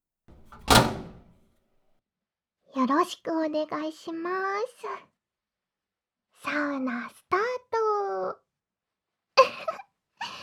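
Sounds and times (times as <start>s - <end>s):
sauna door sliding rub: 0.3s - 1.3s
speech: 2.8s - 5.1s, 6.4s - 8.4s.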